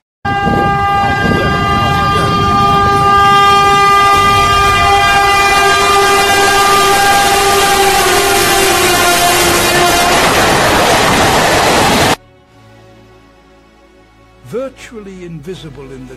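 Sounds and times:
train rumbling past in the forests and jungles of India: 0.3s - 12.2s
speech: 15.2s - 16.1s.

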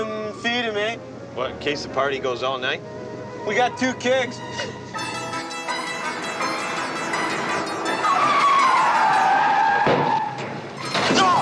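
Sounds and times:
speech: 0.5s - 4.9s
car tires skidding while braking hard: 6.2s - 11.3s.

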